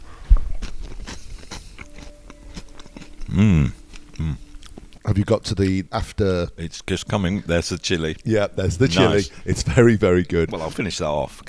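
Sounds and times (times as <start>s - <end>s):
biting into toast with avocado and tomato, crunching and chewing: 0.0s - 5.2s
speech: 3.3s - 4.4s, 5.2s - 11.4s.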